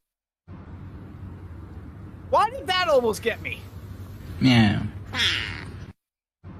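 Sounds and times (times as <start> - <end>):
speech: 2.3 - 3.7, 4.4 - 5.4
person imitating cat meows: 4.5 - 5.8.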